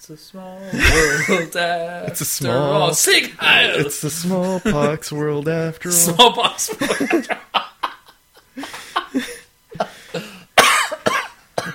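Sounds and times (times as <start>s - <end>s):
speech: 0.0s - 7.4s
laughter: 0.7s - 1.6s, 3.5s - 5.0s, 6.0s - 10.1s
loud harsh hacking cough: 9.8s - 11.7s
sharp coughs: 10.1s - 11.7s.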